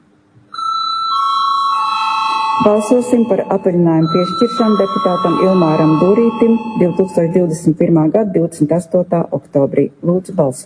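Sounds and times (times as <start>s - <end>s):
electronic bell ringing to call parliament to vote: 0.5s - 7.7s
speech: 2.6s - 10.6s.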